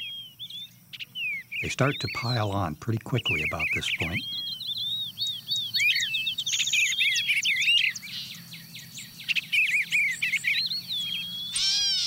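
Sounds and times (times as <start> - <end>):
dawn chorus of wood pewee song sparrow and gray catbird singing: 0.0 - 12.0
faint low hum of insects or frogs: 0.0 - 12.0
speech: 1.6 - 4.5.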